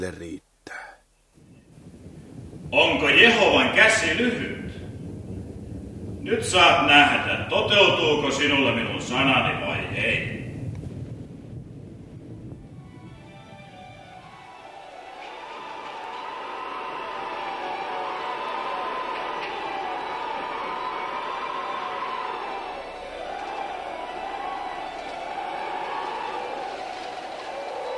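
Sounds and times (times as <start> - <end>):
speech: 0.0 - 0.5, 2.7 - 4.6, 6.3 - 10.4
strong wind howling from across the sea: 1.2 - 27.9.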